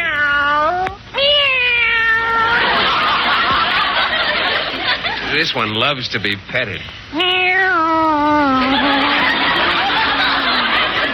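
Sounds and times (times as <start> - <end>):
cats meowing: 0.0 - 2.7, 7.1 - 9.2
laughter: 2.5 - 5.5, 8.5 - 11.1
speech: 5.4 - 9.0.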